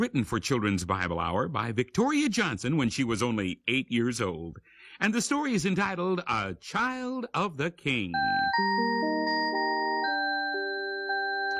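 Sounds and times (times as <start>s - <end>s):
speech: 0.0s - 9.5s
doorbell chime playing a melody of bell-like notes: 8.2s - 11.5s.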